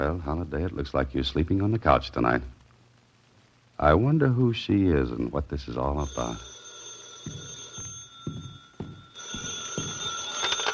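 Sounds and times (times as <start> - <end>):
speech: 0.0 - 2.6, 3.8 - 6.6, 7.2 - 7.5
telephone bell ringing: 6.0 - 10.7.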